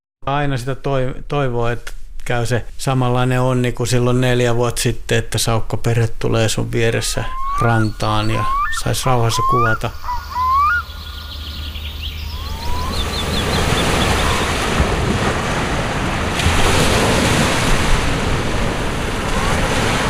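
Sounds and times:
speech: 0:00.2 - 0:10.2
faint bird-like chirps: 0:07.0 - 0:14.6
surf breaking on a sandy beach in a rock-lined cove at Hanko Finland: 0:12.6 - 0:20.0.

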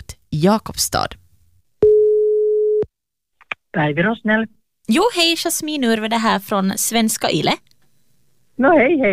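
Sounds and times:
speech: 0:00.4 - 0:01.2, 0:03.7 - 0:07.7, 0:08.6 - 0:09.1
electronic ringback tone of an outgoing phone call: 0:01.8 - 0:02.8.

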